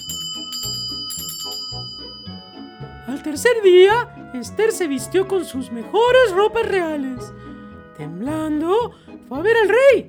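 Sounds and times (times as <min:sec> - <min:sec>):
small bell ringing: 0:00.0 - 0:03.2
speech: 0:03.1 - 0:07.4, 0:08.0 - 0:10.0.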